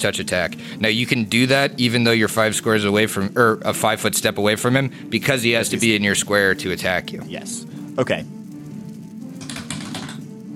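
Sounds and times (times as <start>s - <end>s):
speech: 0.0s - 8.4s
die clattering down through a dice tower: 9.3s - 10.4s.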